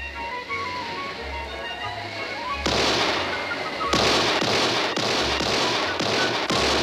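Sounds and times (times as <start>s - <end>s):
low tonal hum: 0.0s - 6.8s
gunfire from the shore: 2.6s - 6.8s.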